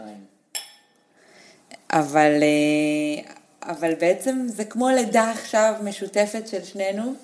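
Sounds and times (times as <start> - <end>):
glasses clinking in a toast: 0.6 - 1.0
speech: 1.9 - 7.2.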